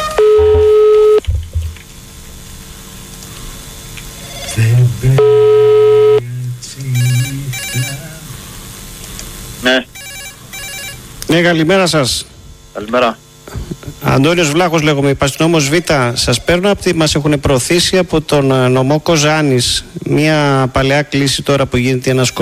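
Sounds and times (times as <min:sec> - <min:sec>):
outgoing call's ringback tone: 0:00.2 - 0:01.2, 0:05.2 - 0:06.2, 0:06.9 - 0:08.1, 0:09.9 - 0:11.1, 0:22.1 - 0:22.4
speech: 0:05.0 - 0:05.2, 0:11.3 - 0:13.2, 0:14.1 - 0:22.4.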